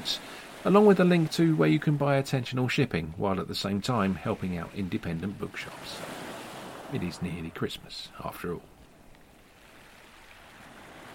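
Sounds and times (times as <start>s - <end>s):
speech: 0.0s - 6.2s, 6.9s - 8.7s
calm sea waves washing onto the shore at low tide: 0.0s - 11.1s.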